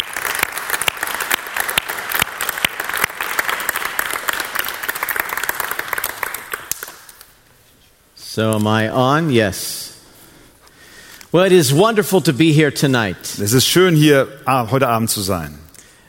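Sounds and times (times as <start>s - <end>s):
room full of people applauding to welcome two guests: 0.0s - 7.3s
speech: 8.4s - 9.9s, 11.3s - 15.6s.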